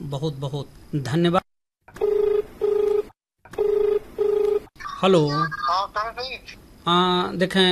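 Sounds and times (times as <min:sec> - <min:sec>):
speech: 0:00.1 - 0:01.5, 0:05.0 - 0:07.6
telephone double ring for an incoming call: 0:02.0 - 0:04.7.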